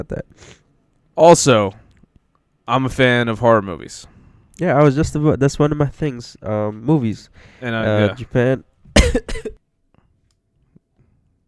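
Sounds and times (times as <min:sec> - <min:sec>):
speech: 0:00.0 - 0:00.6, 0:01.2 - 0:01.8, 0:02.7 - 0:09.6
heavy coughing fit with harsh rapid coughs: 0:09.0 - 0:09.6.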